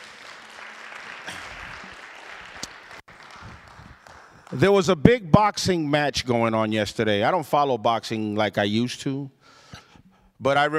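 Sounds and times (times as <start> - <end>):
church congregation applause: 0.0 - 4.7
speech: 4.5 - 9.4, 10.4 - 10.7.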